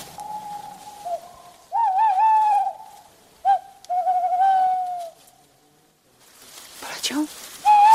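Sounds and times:
tawny owl hooting: 0.0 - 5.3, 7.6 - 7.9
speech: 7.2 - 7.4.

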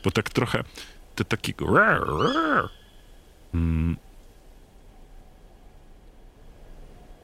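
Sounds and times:
speech: 0.0 - 2.8, 3.5 - 4.1
faint steady hiss: 0.0 - 7.2
tawny owls calling in a forest: 1.7 - 3.2.

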